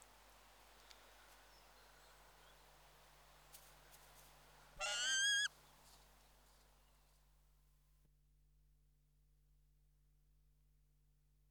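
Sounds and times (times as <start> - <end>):
peregrine falcon giving a harsh drawn-out call: 4.8 - 5.5.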